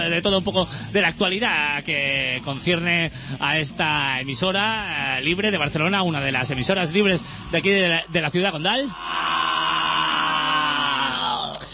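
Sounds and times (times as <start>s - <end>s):
speech: 0.0s - 9.5s
person screaming in a band recording: 8.8s - 11.7s.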